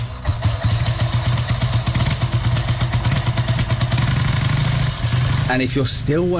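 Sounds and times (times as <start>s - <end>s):
motorbike engine cranking and catching into idle: 0.0s - 5.9s
speech: 5.5s - 6.3s.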